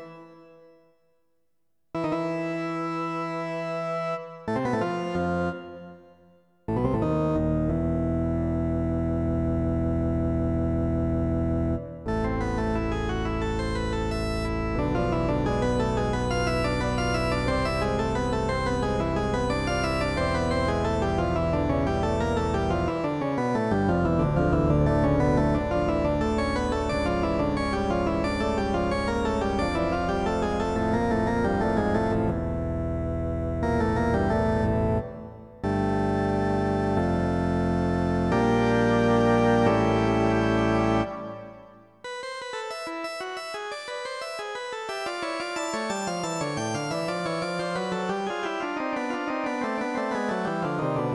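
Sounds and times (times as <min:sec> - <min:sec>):
organ piece: 0:02.0 - 0:06.1, 0:06.7 - 0:51.1.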